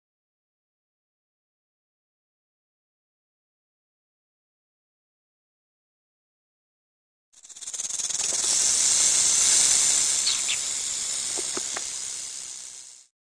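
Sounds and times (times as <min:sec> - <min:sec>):
snake: 0:07.4 - 0:13.2.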